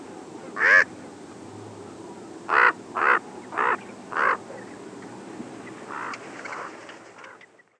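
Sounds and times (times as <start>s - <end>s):
low background hiss: 0.0s - 7.7s
common raven croaking in Arizona: 0.6s - 0.9s, 2.5s - 4.7s, 5.7s - 7.5s.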